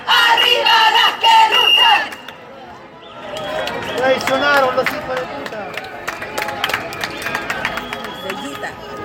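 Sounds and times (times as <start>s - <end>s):
crowd of feminist women chanting at a protest march for free abortion: 0.0s - 2.2s
people clapping at a protest march: 0.1s - 2.4s, 3.3s - 8.9s.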